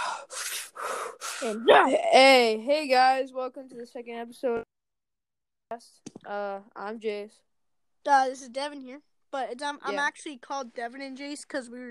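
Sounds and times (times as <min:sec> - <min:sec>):
person taking deep breaths: 0:00.0 - 0:01.6
speech: 0:01.4 - 0:04.8, 0:05.7 - 0:11.9.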